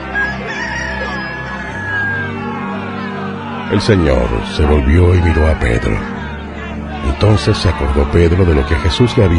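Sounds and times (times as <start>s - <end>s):
rooster crowing: 0.0s - 3.0s
speech: 3.7s - 6.2s, 7.2s - 9.3s.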